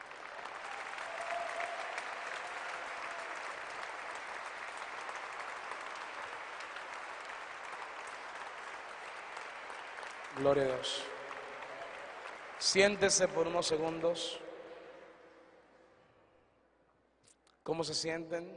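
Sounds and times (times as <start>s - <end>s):
audience applauding at a worship service: 0.0s - 14.0s
speech: 10.4s - 11.1s, 12.6s - 14.4s, 17.6s - 18.5s.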